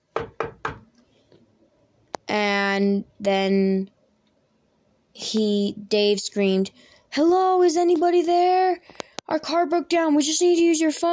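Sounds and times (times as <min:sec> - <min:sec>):
knocking on the door of a small cottage: 0:00.1 - 0:00.9
speech: 0:02.8 - 0:04.0, 0:05.2 - 0:11.1.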